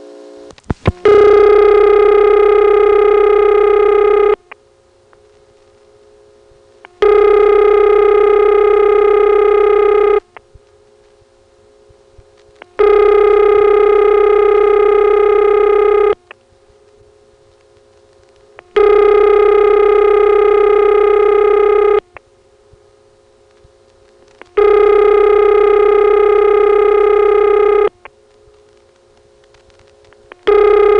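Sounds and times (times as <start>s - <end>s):
telephone line's quieter constant hum: 0.0s - 30.9s
subscriber's telephone line ringing in long buzzing bursts: 1.0s - 4.4s, 7.0s - 10.2s, 12.8s - 16.2s, 18.7s - 22.0s, 24.6s - 27.9s, 30.4s - 30.9s.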